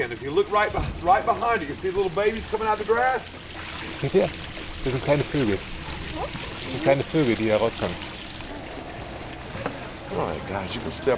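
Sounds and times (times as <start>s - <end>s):
speech: 0.0s - 8.1s, 10.1s - 11.1s
steady wash of water at a boat dock with airboats: 0.0s - 11.1s
knock or splash at a boat dock: 0.7s - 1.1s.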